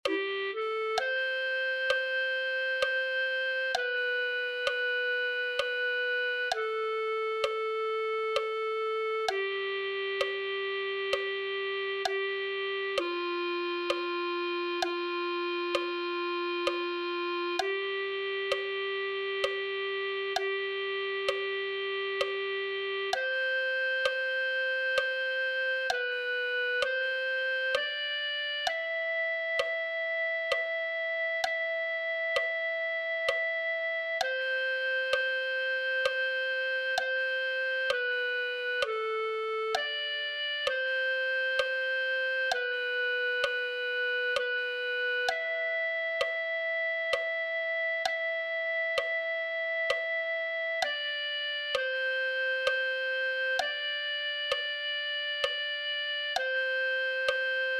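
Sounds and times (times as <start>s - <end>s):
clarinet playing a hymn: 0.0s - 57.7s.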